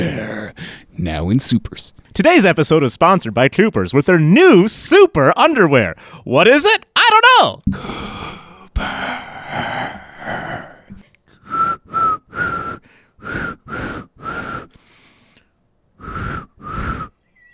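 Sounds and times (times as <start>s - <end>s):
speech: 1.0s - 10.0s
person whistling a tune: 11.5s - 14.8s, 16.0s - 17.2s.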